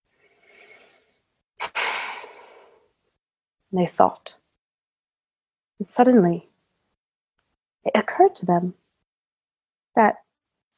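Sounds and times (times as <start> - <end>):
deep breath: 0.2 - 2.9
speech: 3.7 - 4.4, 5.8 - 6.5, 7.8 - 8.8, 10.0 - 10.2.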